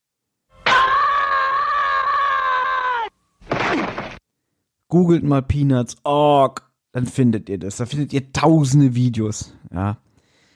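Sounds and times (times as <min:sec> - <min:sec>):
cartoon character's frustrated scream: 0:00.6 - 0:03.2
speech: 0:04.9 - 0:10.1.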